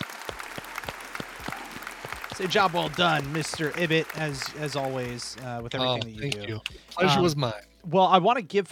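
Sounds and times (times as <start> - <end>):
small group clapping to close the show: 0.0 - 6.9
speech: 2.4 - 8.7.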